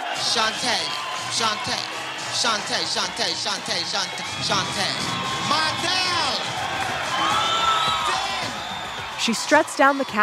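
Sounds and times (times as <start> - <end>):
lively crowd cheering and whooping at a ball: 0.0 - 10.2
speech: 0.2 - 6.4, 9.2 - 10.2.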